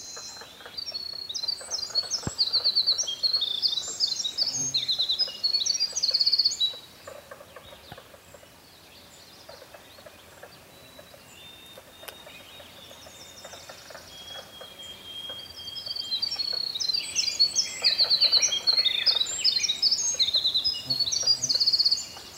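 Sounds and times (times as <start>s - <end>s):
faint chirps: 0.0s - 22.3s
winter wren singing tumbling trills and twitters: 0.0s - 22.3s.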